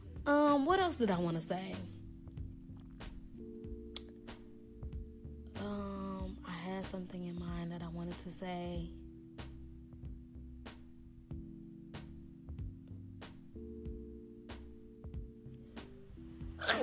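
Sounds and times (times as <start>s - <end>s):
speech: 0.2s - 2.0s, 6.8s - 9.0s
soft beat with steady ticking percussion: 1.7s - 16.6s
sharp loud sneeze: 16.6s - 16.8s.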